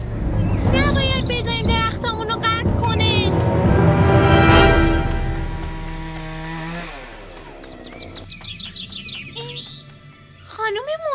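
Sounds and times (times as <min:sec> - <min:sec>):
chainsaw engine roaring: 0:00.0 - 0:08.4.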